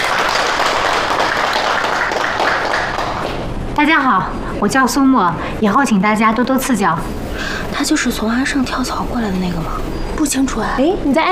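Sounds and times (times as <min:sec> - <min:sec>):
crowd of people in a marketing department clapping to welcome a new colleague: 0:00.0 - 0:03.6
speech: 0:03.8 - 0:11.3.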